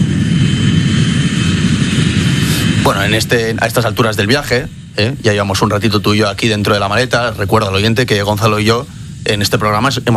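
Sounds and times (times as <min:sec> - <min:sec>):
airplane engine roar on an airport runway: 0:00.0 - 0:10.1
speech: 0:02.9 - 0:10.1.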